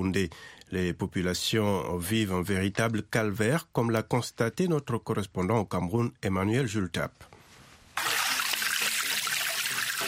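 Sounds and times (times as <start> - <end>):
speech: 0.0 - 7.3
spring water flowing from a developed spring in Cameroon: 8.0 - 10.0.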